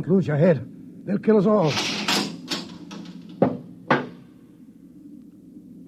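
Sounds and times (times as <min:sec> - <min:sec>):
speech: 0:00.0 - 0:01.9
door lock being worked open with clicks and metallic clunks: 0:01.7 - 0:04.2.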